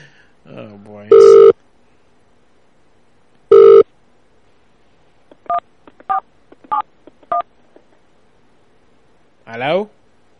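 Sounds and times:
telephone touch-tone dialing beeps: 0:01.1 - 0:01.5, 0:03.5 - 0:03.8
speech: 0:09.6 - 0:10.0.

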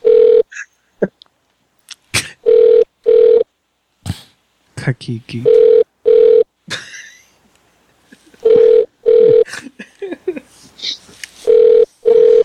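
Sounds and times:
telephone ringback tone on an outgoing call: 0:00.0 - 0:00.4, 0:02.4 - 0:03.5, 0:05.5 - 0:06.5, 0:08.4 - 0:09.5, 0:11.4 - 0:12.4
quiet noises: 0:00.0 - 0:12.4
speech: 0:04.8 - 0:05.7.

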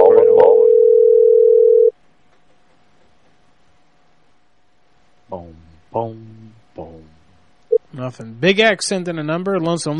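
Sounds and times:
Mexican telephone ringback tone: 0:00.0 - 0:01.9
speech: 0:06.0 - 0:06.3, 0:08.0 - 0:09.9.

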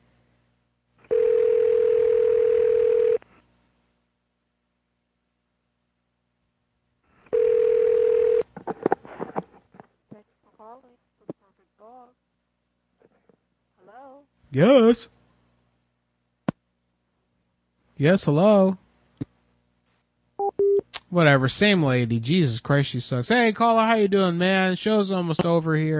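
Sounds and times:
telephone dial tone while a call is placed: 0:01.1 - 0:03.2, 0:07.3 - 0:08.5
speech: 0:14.6 - 0:15.2, 0:18.0 - 0:18.8, 0:21.1 - 0:25.9.

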